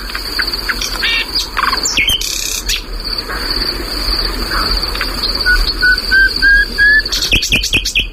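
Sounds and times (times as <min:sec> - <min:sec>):
dense chorus of crickets at night: 0:00.0 - 0:08.1
bird singing rising whistled notes at night: 0:00.4 - 0:02.9, 0:04.2 - 0:08.1.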